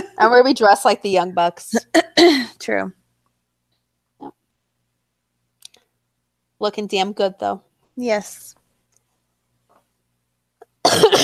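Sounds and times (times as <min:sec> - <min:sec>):
speech: 0:00.2 - 0:03.0, 0:06.6 - 0:08.6
person coughing: 0:01.9 - 0:02.6, 0:10.8 - 0:11.2.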